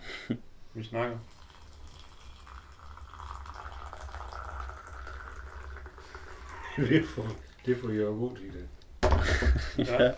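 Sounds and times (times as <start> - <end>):
speech: 0.3 - 1.4, 6.8 - 10.1
boiling water pouring into a cup for tea: 1.2 - 8.2.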